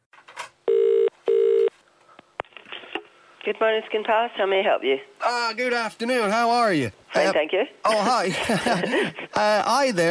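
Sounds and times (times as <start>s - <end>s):
telephone ringing tone through the line: 0.7s - 1.7s
speech: 3.4s - 10.1s
laughter: 7.9s - 9.6s.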